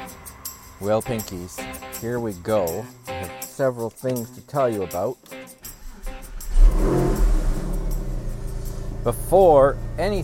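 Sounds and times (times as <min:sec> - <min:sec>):
speech: 0:00.8 - 0:05.6, 0:09.0 - 0:10.2
car engine revving and idling: 0:05.7 - 0:10.2.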